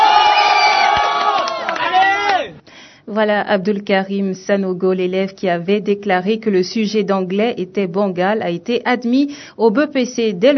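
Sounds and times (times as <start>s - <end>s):
crowd cheering and whooping at a celebration of exam results: 0.0s - 2.5s
speech: 3.2s - 10.5s.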